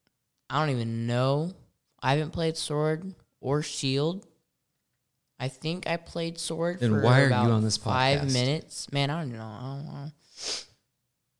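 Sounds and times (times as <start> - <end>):
speech: 0.5 - 4.3, 5.4 - 10.7
sniffling sneeze: 10.2 - 10.8.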